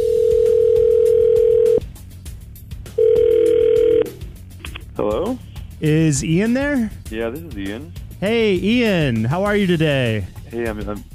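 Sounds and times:
telephone ring tone as a call is placed: 0:00.0 - 0:01.8, 0:03.0 - 0:04.2
speech: 0:05.8 - 0:11.1.

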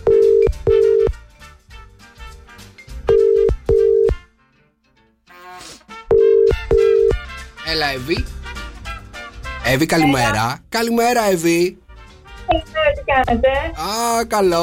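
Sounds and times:
telephone ringing tone over the line: 0:00.0 - 0:01.2, 0:03.1 - 0:04.2, 0:06.1 - 0:07.2
speech: 0:07.7 - 0:08.4, 0:09.6 - 0:11.8, 0:12.5 - 0:14.6.

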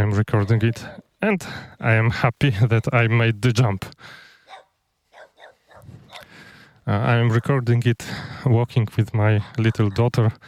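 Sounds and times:
outdoor noise in open countryside in Poland: 0:00.0 - 0:10.4
speech: 0:00.1 - 0:04.2, 0:06.9 - 0:10.4
dog barking in open countryside in Poland: 0:04.4 - 0:06.3.

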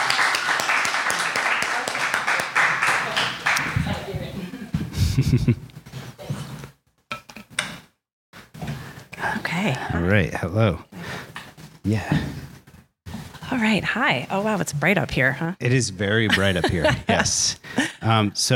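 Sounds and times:
crowd applauding a guest: 0:00.0 - 0:04.1
laughter: 0:02.9 - 0:05.7, 0:16.1 - 0:18.5
speech: 0:05.2 - 0:05.7, 0:09.6 - 0:10.9, 0:11.8 - 0:12.4, 0:13.6 - 0:18.5.

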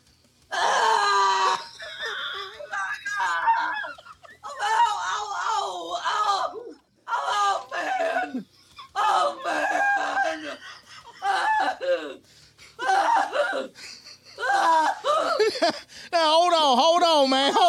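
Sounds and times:
man screaming in agony: 0:00.5 - 0:03.8, 0:04.5 - 0:08.4, 0:09.0 - 0:12.2, 0:12.8 - 0:13.8, 0:14.4 - 0:15.5
man's wailing moans: 0:00.5 - 0:15.7
laughter: 0:01.2 - 0:06.3, 0:07.2 - 0:16.1, 0:16.9 - 0:17.6.

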